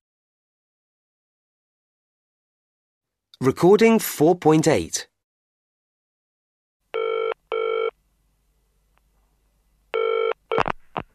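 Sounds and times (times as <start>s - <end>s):
speech: 3.4s - 5.1s
telephone ringing: 7.0s - 7.9s, 10.0s - 10.6s.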